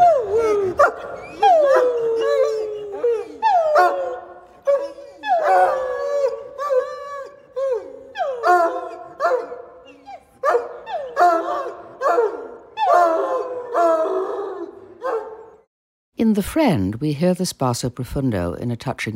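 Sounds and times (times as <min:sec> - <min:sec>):
dog yipping: 0:00.0 - 0:13.5, 0:15.0 - 0:15.5
dog howling in a singing way: 0:00.0 - 0:15.6
speech: 0:16.4 - 0:19.1.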